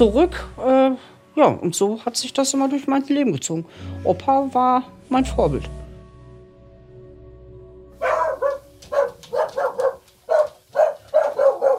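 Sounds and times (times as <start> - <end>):
speech: 0.0 - 5.8
dogs from Spain barking in sharp yaps: 8.0 - 11.7.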